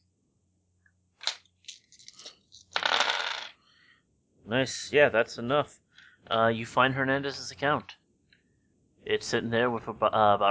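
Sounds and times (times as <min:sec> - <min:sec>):
dice rolled during a game: 0:01.2 - 0:03.5
speech: 0:04.5 - 0:08.0, 0:09.1 - 0:10.4.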